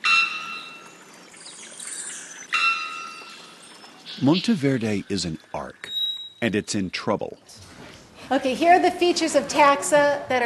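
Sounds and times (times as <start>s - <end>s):
three-wattled bellbird metallic bonk call: 0.0s - 1.0s, 2.5s - 4.6s
three-wattled bellbird thin wavering whistle: 0.0s - 4.4s
speech: 4.2s - 7.7s, 8.3s - 10.4s.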